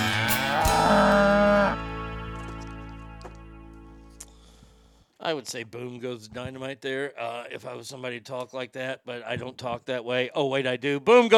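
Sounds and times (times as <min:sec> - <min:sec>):
cow mooing: 0:00.1 - 0:01.8
speech: 0:05.3 - 0:11.3.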